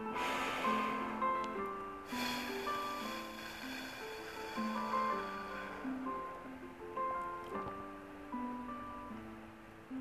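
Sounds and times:
long steady exhale through narrowed lips in a straw-breath breathing exercise: 0.0s - 6.3s
loud breathy nasal inhale in a straw-breath breathing exercise: 0.0s - 6.3s
soft music with sustained tones: 0.0s - 9.9s.

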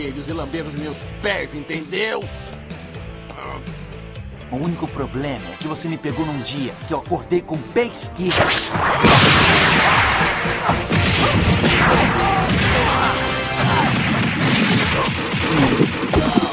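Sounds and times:
speech: 0.0s - 2.6s, 3.4s - 3.8s, 4.5s - 12.4s
swooshing whooshes: 8.3s - 12.8s
cartoonish fight punches, thwacks and smashes: 8.3s - 16.5s.

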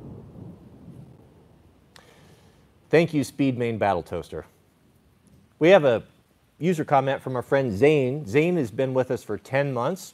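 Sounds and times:
thunder rumbling from a summer storm: 0.0s - 1.9s
speech: 2.9s - 4.5s, 5.6s - 10.1s.

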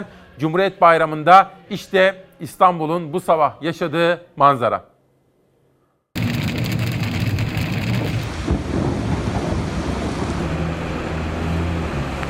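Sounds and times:
speech: 0.0s - 4.9s
deep low rumbling: 6.2s - 12.2s
heavy rain downpour: 6.2s - 12.2s.

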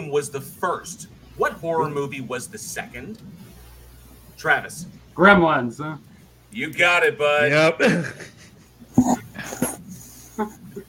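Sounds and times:
speech: 0.1s - 3.4s, 4.4s - 8.4s
puppy whining in high-pitched bursts: 9.0s - 10.8s.

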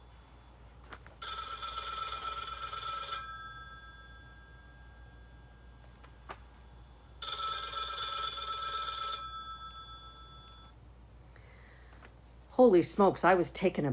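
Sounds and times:
1970s-era telephone bell ringing: 1.2s - 10.8s
speech: 12.6s - 13.9s.

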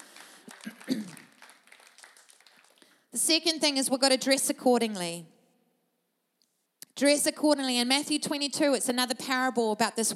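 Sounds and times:
audience applauding: 0.0s - 3.0s
speech: 3.3s - 5.3s, 7.0s - 10.1s.

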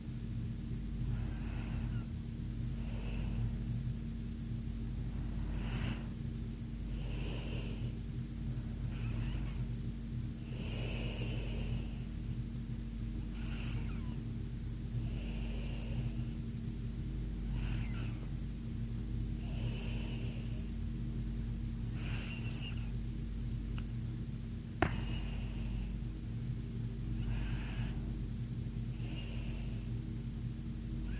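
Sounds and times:
appliance humming low: 0.0s - 31.1s
girl breathing slowly while sleeping: 1.0s - 4.0s, 4.9s - 12.5s, 13.1s - 16.6s, 17.4s - 21.0s, 21.7s - 23.1s, 24.8s - 26.4s, 27.0s - 28.2s, 28.8s - 30.1s.

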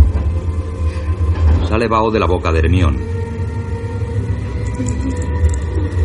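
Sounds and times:
train jolt: 0.0s - 2.5s
train heavy low rumble and mechanical hum: 0.0s - 6.0s
speech: 1.7s - 3.3s, 4.8s - 5.2s.

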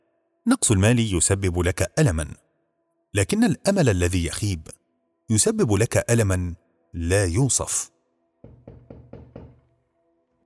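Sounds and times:
speech: 0.4s - 2.5s, 3.1s - 8.6s
knocking on a wooden door: 8.4s - 9.7s.

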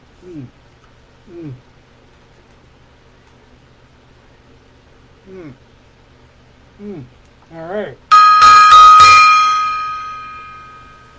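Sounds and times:
speech: 0.2s - 0.7s, 1.3s - 1.7s, 5.3s - 5.7s, 6.8s - 8.1s
gong being struck: 8.1s - 11.1s.

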